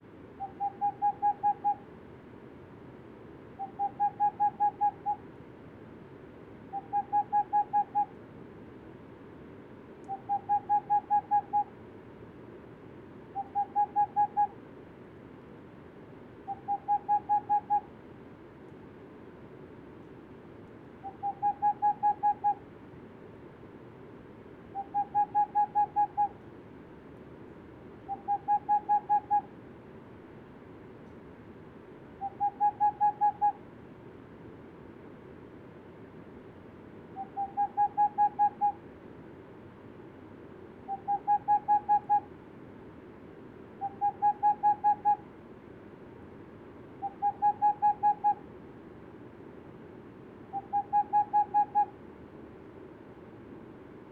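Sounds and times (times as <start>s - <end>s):
unpaired male Tengmalm's owl hooting: 0.4s - 1.9s, 3.6s - 5.2s, 6.7s - 8.2s, 10.1s - 11.7s, 13.3s - 14.6s, 16.4s - 17.9s, 21.0s - 22.6s, 24.7s - 26.4s, 28.0s - 29.5s, 32.2s - 33.6s, 37.1s - 38.8s, 40.9s - 42.3s, 43.8s - 45.2s, 47.0s - 48.5s, 50.5s - 52.0s.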